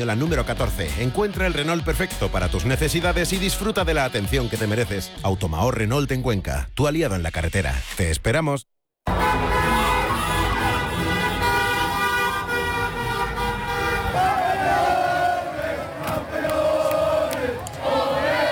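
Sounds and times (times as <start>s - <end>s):
speech: 0.0s - 8.7s
car horns tooting in a street celebration: 9.1s - 17.7s
crowds chanting and shouting in a street celebration after a football World Cup final victory: 9.1s - 18.4s.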